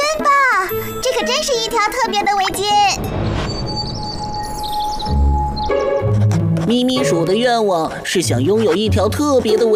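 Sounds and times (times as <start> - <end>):
speech: 1.2 - 3.2, 6.7 - 9.7
birds chirping and tweeting: 2.0 - 7.8.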